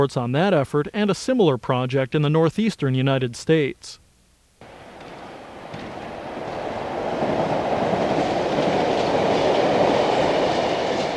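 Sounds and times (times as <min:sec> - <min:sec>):
speech: 0:00.0 - 0:04.0
train rumbling along the rails: 0:04.7 - 0:11.1.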